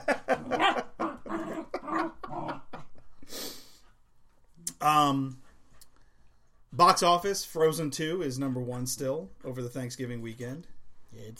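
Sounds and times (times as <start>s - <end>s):
dog grumbling and moaning: 0.3s - 3.0s
speech: 4.8s - 5.4s, 6.8s - 11.3s.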